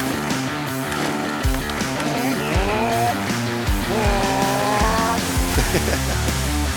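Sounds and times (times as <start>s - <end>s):
laughter: 0.0s - 6.7s
racing motorcycle engines revving and whining: 0.0s - 6.7s.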